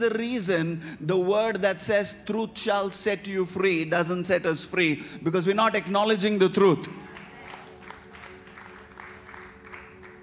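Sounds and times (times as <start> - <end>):
speech: 0.0 - 7.0
audience clapping: 7.1 - 10.2.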